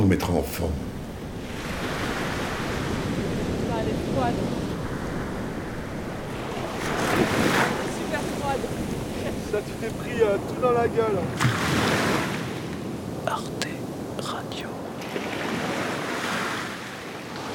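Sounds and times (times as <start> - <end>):
steady wind buffeting the microphone: 0.0 - 13.2
speech: 0.1 - 0.9, 3.8 - 4.6, 8.5 - 12.2, 14.3 - 14.9
ocean surf breaking on the shore: 0.6 - 17.5.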